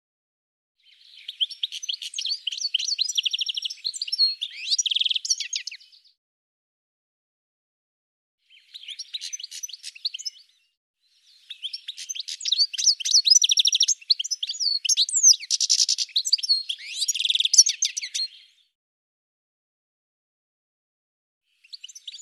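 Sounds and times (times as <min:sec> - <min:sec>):
bird singing in high rapid chirps, trills and twittering notes: 0:00.8 - 0:06.0, 0:08.5 - 0:10.5, 0:11.2 - 0:18.6.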